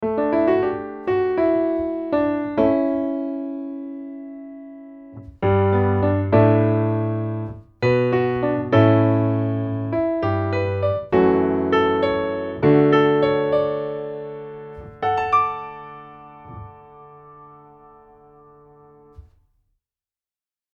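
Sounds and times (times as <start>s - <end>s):
Bechstein piano high notes damped: 0.1s - 19.3s.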